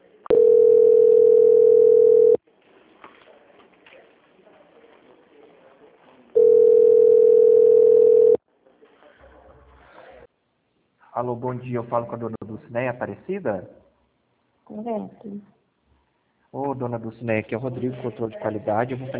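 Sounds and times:
telephone line tone beeps during a call transfer: 0.3s - 2.4s, 6.4s - 8.4s
speech: 11.2s - 13.8s, 14.7s - 15.6s, 16.5s - 19.1s.

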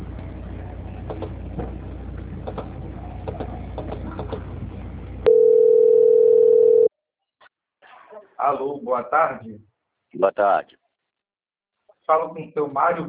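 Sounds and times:
speech: 1.2s - 1.8s, 8.5s - 10.8s, 12.1s - 13.0s
steady single-pitch telephone line tone during a call transfer: 5.3s - 6.9s.

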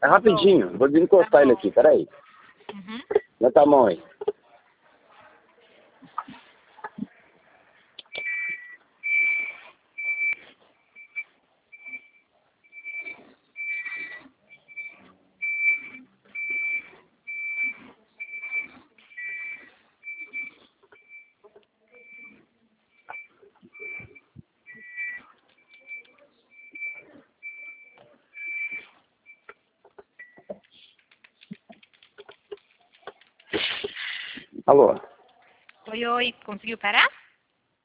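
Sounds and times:
speech: 0.0s - 4.1s, 36.2s - 37.2s
reversing tanker truck backup alarm beeping: 8.1s - 30.6s.

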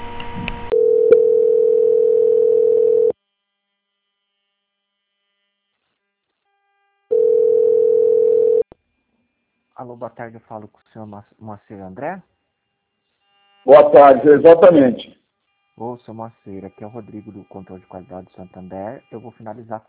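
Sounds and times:
telephone line tone while a caller is transferred: 0.7s - 3.1s, 7.1s - 8.6s
speech: 9.8s - 12.4s, 13.7s - 15.2s, 15.8s - 19.8s.

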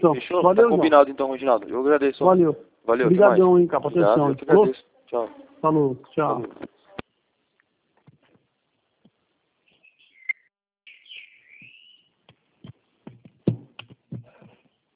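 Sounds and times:
speech: 0.0s - 6.7s
small bird singing: 9.6s - 12.2s
knocks and thumps: 12.6s - 14.7s.

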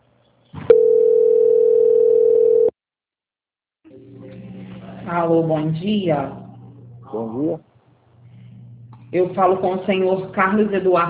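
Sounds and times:
telephone line tone during a bank call being transferred: 0.7s - 2.7s
speech: 5.3s - 6.4s, 7.1s - 7.7s, 9.1s - 11.0s.

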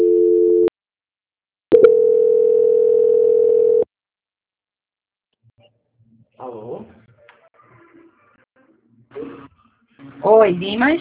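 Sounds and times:
electronic telephone line tone during a call transfer: 0.0s - 0.7s, 1.7s - 3.9s
speech: 6.4s - 7.0s, 10.2s - 10.9s.

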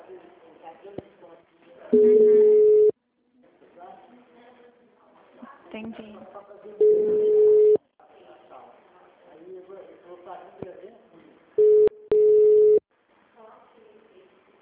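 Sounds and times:
speech: 1.9s - 2.4s
unanswered telephone call tone: 2.0s - 3.0s, 6.8s - 7.8s, 11.6s - 12.8s.

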